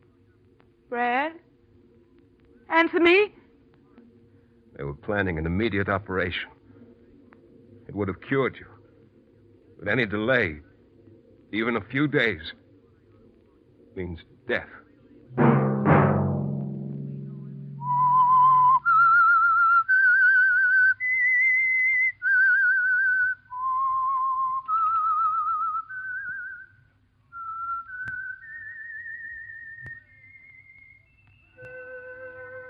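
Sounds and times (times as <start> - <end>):
speech: 0.9 - 1.5, 2.7 - 3.4, 4.8 - 6.6, 7.9 - 8.7, 9.8 - 10.7, 11.5 - 12.6, 14.0 - 15.5
brief resonant chord: 15.4 - 18.5
lone whistled melody of a radio program signature tune: 17.3 - 32.6.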